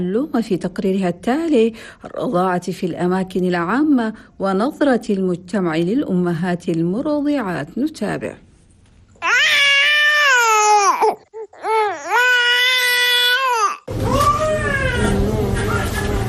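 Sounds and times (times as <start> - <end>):
speech: 0.0 - 8.4
baby crying from hunger: 9.2 - 15.4.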